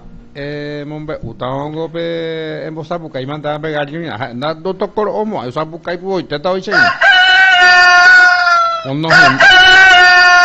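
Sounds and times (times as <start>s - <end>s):
speech: 0.4s - 7.1s, 8.8s - 9.6s
rooster crowing: 6.7s - 10.4s.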